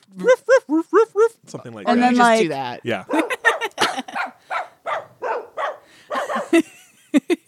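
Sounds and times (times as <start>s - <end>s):
laughter: 0.2s - 4.3s, 6.1s - 7.4s
speech: 1.6s - 3.2s
dogs barking in a jingle: 3.0s - 6.7s.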